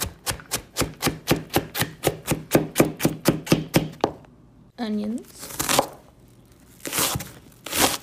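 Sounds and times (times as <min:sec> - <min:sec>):
chopping carrots: 0:00.0 - 0:04.1
speech: 0:04.8 - 0:05.4.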